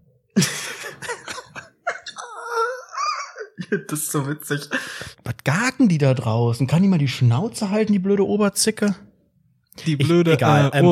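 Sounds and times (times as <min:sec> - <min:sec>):
person coughing in the stairwell: 0:00.4 - 0:03.9
laughter: 0:00.4 - 0:04.8
drawn-out wavering vocal groan: 0:02.1 - 0:03.0
speech: 0:03.7 - 0:09.0, 0:09.8 - 0:10.8.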